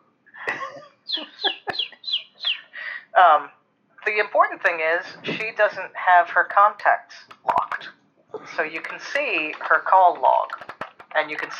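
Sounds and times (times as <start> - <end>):
agitated birds squawking: 1.1 - 2.9
speech: 4.2 - 10.6, 11.2 - 11.5
sharp clicks: 8.8 - 11.5.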